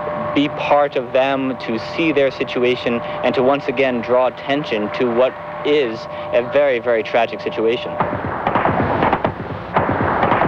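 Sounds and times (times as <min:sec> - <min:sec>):
speech: 0:00.4 - 0:08.2
gunfire pounding a city under siege: 0:08.0 - 0:10.4.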